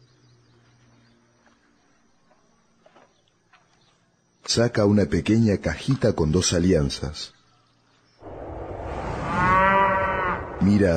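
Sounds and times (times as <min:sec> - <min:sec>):
speech: 0:04.5 - 0:07.4, 0:10.6 - 0:10.9
cow mooing: 0:09.3 - 0:10.6.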